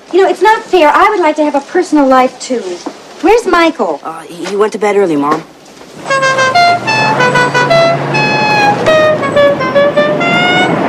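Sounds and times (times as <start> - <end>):
speech: 0.1 - 7.6
car horn honking: 6.0 - 10.8.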